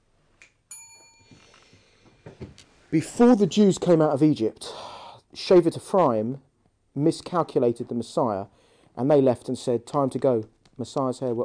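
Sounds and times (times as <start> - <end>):
bell ringing: 0.7 - 1.5
speech: 2.9 - 11.4.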